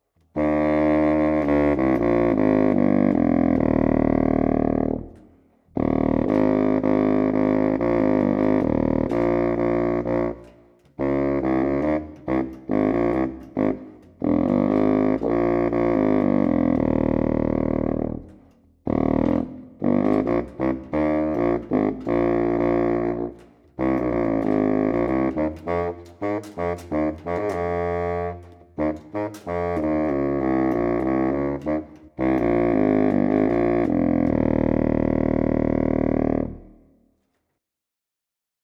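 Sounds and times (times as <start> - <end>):
double bass: 0.3 - 36.8.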